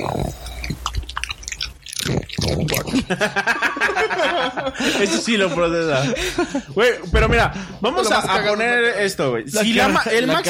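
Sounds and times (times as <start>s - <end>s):
dog crunching Doritos chips: 0.0s - 3.1s
speech: 2.5s - 10.4s
laughter: 2.9s - 7.1s.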